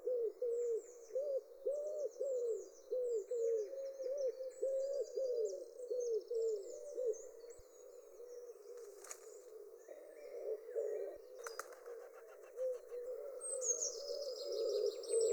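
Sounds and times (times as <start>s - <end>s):
common wood pigeon cooing: 0.0s - 7.3s, 8.3s - 15.3s
small birds twittering: 4.9s - 15.3s.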